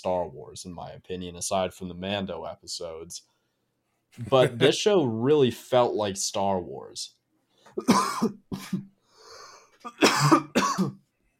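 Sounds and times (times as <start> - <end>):
speech: 0.0 - 3.3, 4.1 - 8.9
harsh coughing: 7.8 - 8.9, 9.8 - 11.0
raspy breath in: 9.0 - 9.8.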